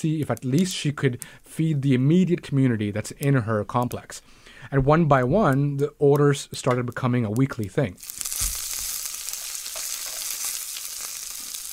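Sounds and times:
speech: 0:00.0 - 0:08.2
dishes and idli frying in a pan in an apartment kitchen: 0:08.0 - 0:11.7.

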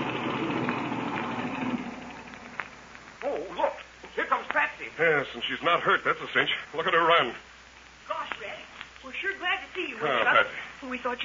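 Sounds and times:
airplane engine idling: 0:00.0 - 0:02.9
speech: 0:05.0 - 0:07.5, 0:09.1 - 0:11.2.

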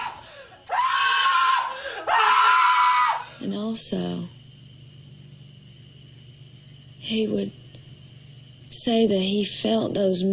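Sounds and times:
man screaming: 0:00.0 - 0:03.2
speech: 0:03.5 - 0:04.4, 0:07.1 - 0:07.6, 0:08.7 - 0:10.3.

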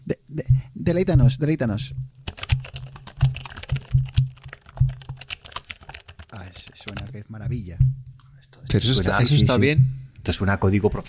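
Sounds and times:
speech: 0:00.1 - 0:02.1, 0:08.8 - 0:11.0
typing on a mechanical computer keyboard: 0:02.2 - 0:07.2.

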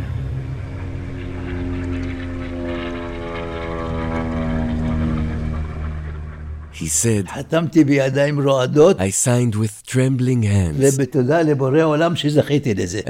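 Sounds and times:
propeller airplane engine drone: 0:00.0 - 0:08.8
speech: 0:06.8 - 0:13.0.

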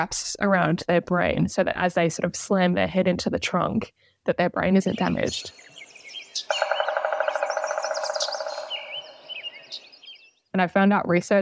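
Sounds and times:
speech: 0:00.0 - 0:05.8, 0:10.6 - 0:11.4
smaller birds chirping and twittering: 0:04.6 - 0:10.6
pileated woodpecker giving a loud rapid run of repeated notes: 0:05.0 - 0:10.4.

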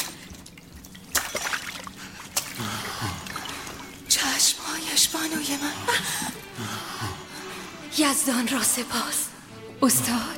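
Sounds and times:
water tossed from a cup splashing: 0:00.0 - 0:04.1
faint dripping: 0:00.0 - 0:06.5
speech: 0:05.0 - 0:06.7, 0:08.0 - 0:10.3.

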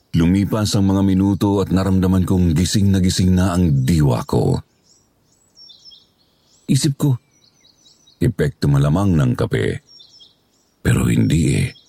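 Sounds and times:
soft high-pitched birdsong with chirps and whistled notes: 0:00.0 - 0:11.8
speech: 0:00.2 - 0:04.7, 0:06.7 - 0:07.2, 0:08.2 - 0:09.9, 0:10.8 - 0:11.8.

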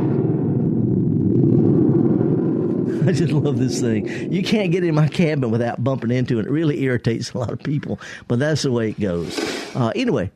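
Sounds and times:
gourd thunder drum with membrane and hanging spring shaken, rumbling: 0:00.0 - 0:07.6
speech: 0:03.1 - 0:10.3.

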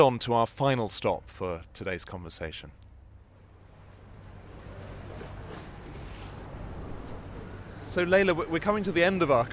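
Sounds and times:
speech: 0:00.0 - 0:02.8, 0:07.8 - 0:09.5
wind on the Victoria Embankment by the River Thames in London: 0:00.0 - 0:09.5
low engine-like rumble on the Victoria Embankment in London: 0:02.6 - 0:09.5.

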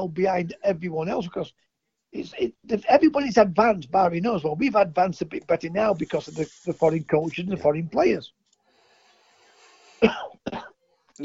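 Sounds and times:
speech: 0:00.0 - 0:08.4, 0:10.0 - 0:11.2
person coughing: 0:10.0 - 0:10.8.

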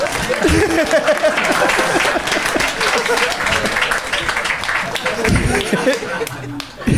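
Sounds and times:
crowd applauding: 0:00.0 - 0:06.9
laughter: 0:00.0 - 0:06.9
murmuring voices: 0:00.0 - 0:06.9.

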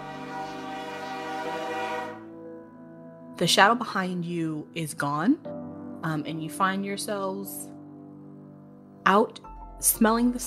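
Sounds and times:
steam train whistle: 0:00.0 - 0:02.4
speech: 0:03.4 - 0:07.7, 0:09.1 - 0:10.4.

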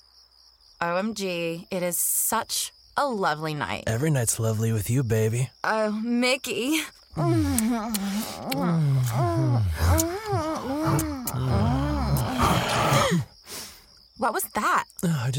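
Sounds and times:
speech: 0:00.8 - 0:11.8, 0:13.1 - 0:13.3, 0:14.2 - 0:15.3
voice imitating a werewolf growling and howling: 0:07.2 - 0:13.3.

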